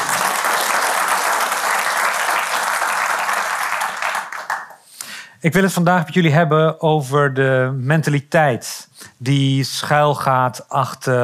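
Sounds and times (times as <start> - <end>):
sizable crowd applauding: 0.0 - 4.8
speech: 5.4 - 11.2.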